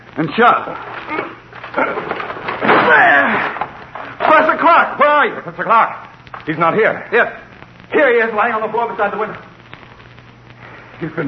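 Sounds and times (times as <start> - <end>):
speech: 0.2 - 2.1, 4.4 - 9.5, 11.0 - 11.2
locked door splintering crash: 0.8 - 4.6.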